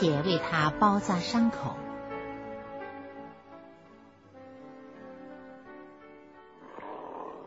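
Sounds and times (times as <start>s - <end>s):
speech: 0.0s - 1.9s
hungry wolf growling: 6.6s - 7.4s.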